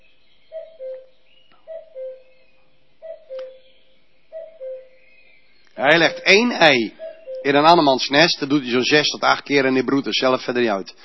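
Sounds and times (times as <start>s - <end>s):
common cuckoo calling: 0.0s - 8.3s
soft outdoor hiss: 0.0s - 11.0s
speech: 5.8s - 11.0s.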